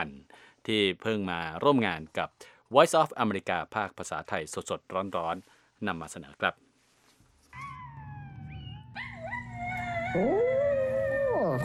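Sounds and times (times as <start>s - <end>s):
speech: 0.6s - 6.6s, 10.1s - 10.6s
small dog howling: 7.6s - 11.6s.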